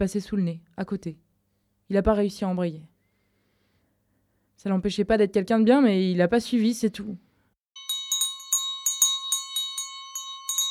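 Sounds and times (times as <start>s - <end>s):
speech: 0.0s - 1.3s, 1.9s - 2.9s, 4.6s - 7.2s
small kitchen bell shaken: 7.8s - 10.6s.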